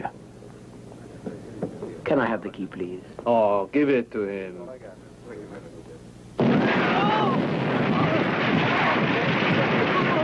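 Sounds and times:
speech: 2.1 - 5.4
explosion: 6.4 - 10.2.

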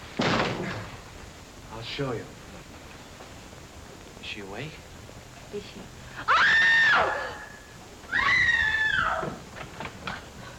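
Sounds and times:
speech: 1.8 - 2.4, 4.3 - 4.9, 5.5 - 7.3
woman screaming: 6.2 - 9.3.

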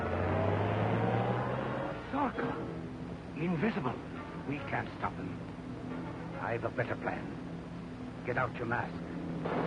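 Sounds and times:
runaway car engine droning: 0.0 - 2.9
speech: 3.4 - 5.6, 6.4 - 7.4, 8.2 - 9.6.

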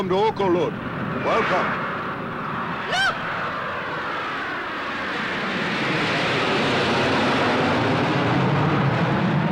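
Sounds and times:
speech: 0.0 - 1.8, 2.9 - 3.1
jet planes roaring overhead: 0.0 - 9.4.

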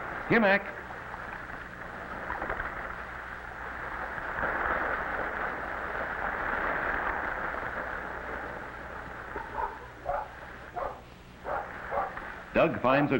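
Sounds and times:
steady rushing wash of water or waves: 0.0 - 13.1
speech: 0.3 - 0.9, 12.6 - 13.1
puppies barking and yipping excitedly: 9.4 - 12.2.

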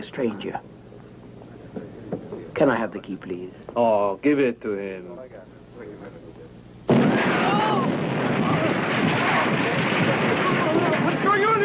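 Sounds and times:
speech: 0.0 - 0.7, 2.6 - 6.4
loud explosion below deck on a ship: 6.9 - 11.6.

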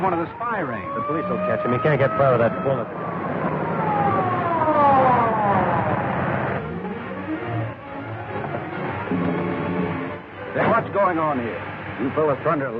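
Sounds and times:
speech: 0.0 - 3.2, 11.0 - 12.7
car engine approaching and revving: 0.1 - 12.7.

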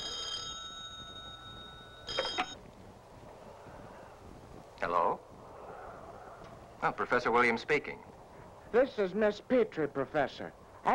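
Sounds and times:
old telephone bell ringing in a university professor's office: 0.0 - 2.6
speech: 6.8 - 8.1, 8.7 - 10.9.

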